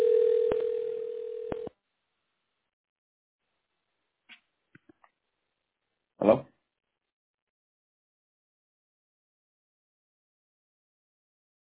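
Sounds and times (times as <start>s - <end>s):
telephone dial tone: 0.0s - 1.7s.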